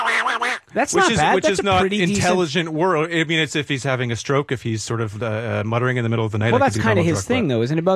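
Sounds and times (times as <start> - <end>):
person imitating a cartoon duck's voice with raspy nasal quacking: 0.0 - 2.4
speech: 0.7 - 7.9
laughter: 0.8 - 3.2.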